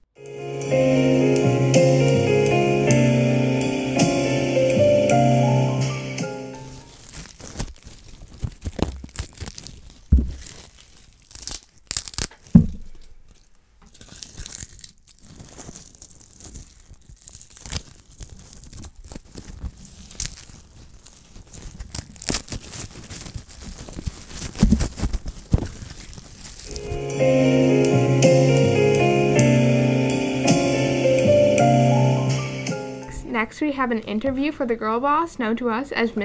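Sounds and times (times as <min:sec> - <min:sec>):
short musical opening: 0:00.2 - 0:06.6, 0:26.8 - 0:33.4
dry leaves crunching and crackling: 0:05.4 - 0:29.7
speech: 0:33.8 - 0:36.2.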